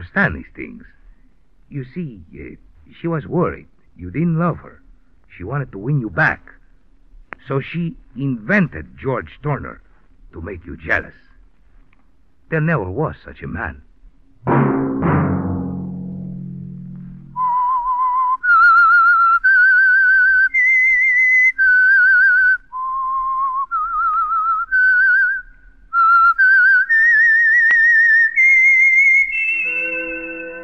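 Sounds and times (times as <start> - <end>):
speech: 0.0 - 1.0, 1.7 - 6.6, 7.4 - 11.2, 12.5 - 14.8
sharp low percussive hits: 14.4 - 17.5
person whistling a slow eerie melody: 17.3 - 25.4, 26.0 - 30.6.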